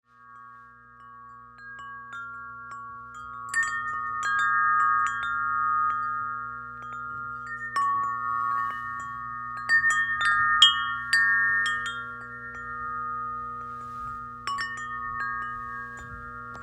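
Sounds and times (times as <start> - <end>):
30 inch chime: 0.0 - 16.6.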